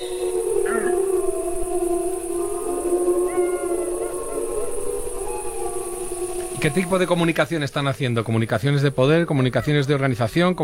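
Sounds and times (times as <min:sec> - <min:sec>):
young wolves and pups yelping: 0:00.0 - 0:07.1
adult wolf pack howling in chorus: 0:00.0 - 0:10.1
speech: 0:06.6 - 0:10.6.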